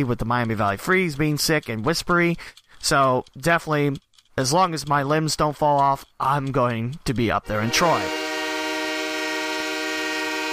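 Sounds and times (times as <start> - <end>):
speech: 0.0 - 8.2
hockey goal horn honking for a goal scored: 7.5 - 10.5.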